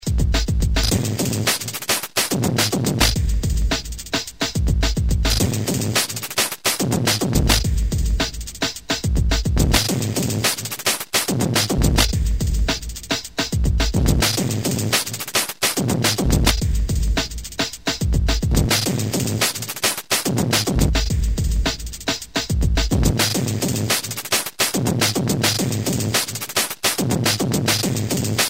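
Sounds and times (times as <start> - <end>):
drums pitched an octave up: 0.0 - 28.4.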